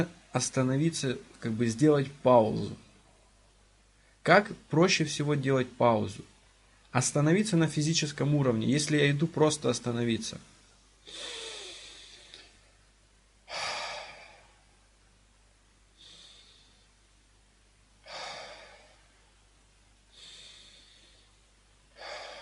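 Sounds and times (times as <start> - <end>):
speech: 0.0 - 2.8, 4.2 - 6.3, 6.9 - 10.5
slow deep breaths: 3.9 - 4.2, 11.0 - 15.0, 15.9 - 17.1, 18.0 - 22.4.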